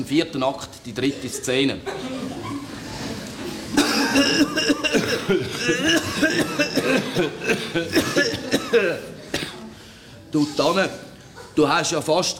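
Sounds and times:
speech: 0.0 - 2.3, 4.1 - 9.2, 10.3 - 11.0, 11.6 - 12.3
laughter: 1.4 - 9.3
person coughing in a stage play scene: 3.7 - 9.7.

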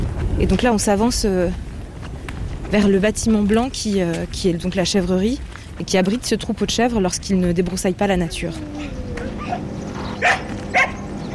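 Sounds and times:
steady hum: 0.0 - 11.3
speech: 0.4 - 1.7, 2.7 - 9.7
shepherd dog barking in greeting at a goat barn: 8.8 - 11.0.

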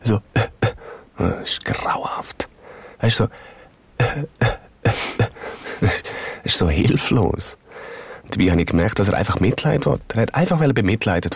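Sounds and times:
speech: 0.1 - 0.5, 1.2 - 4.6, 5.8 - 11.3
voice imitating a man's quiet muttered cough: 0.3 - 0.8, 4.0 - 6.0.

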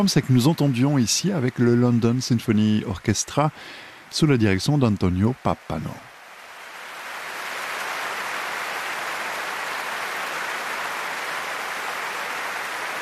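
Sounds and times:
large concert hall audience applauding warmly: 0.0 - 3.5, 6.7 - 12.9
speech: 0.0 - 6.1.

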